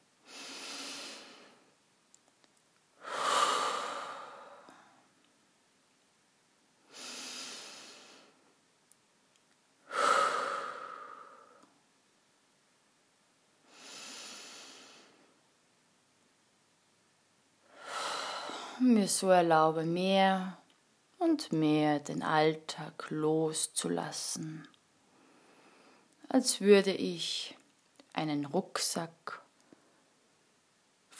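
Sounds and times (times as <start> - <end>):
slow deep breaths taken to settle down: 0.2 - 1.8, 3.0 - 5.1, 6.8 - 8.5, 9.8 - 11.8, 13.6 - 15.4, 17.7 - 18.8, 25.0 - 26.2
speech: 18.8 - 20.6, 21.2 - 24.7, 26.3 - 27.6, 28.2 - 29.4.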